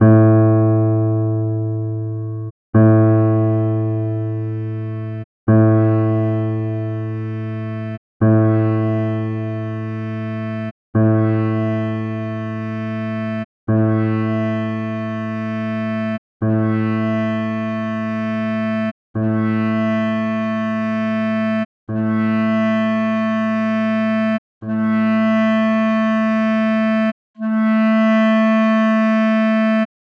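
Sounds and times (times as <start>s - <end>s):
piano: 0.0s - 14.7s
clarinet: 2.8s - 29.9s.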